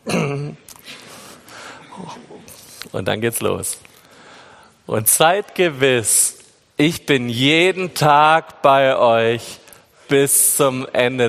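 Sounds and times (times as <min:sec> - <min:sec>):
person clearing throat as a group gets ready to speak: 0:00.0 - 0:00.9, 0:01.8 - 0:02.6
speech: 0:00.0 - 0:01.0, 0:02.9 - 0:03.9, 0:04.9 - 0:11.2.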